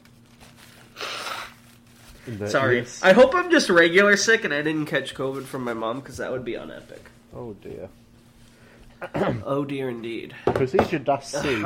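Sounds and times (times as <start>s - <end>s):
forceful nose blow: 0.8s - 1.7s
speech: 2.3s - 8.0s, 9.0s - 11.6s.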